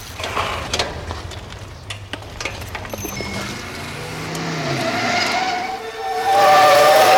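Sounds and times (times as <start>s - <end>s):
car tires screeching in a skid: 3.0s - 7.1s
speeding car engine roaring: 3.0s - 7.1s.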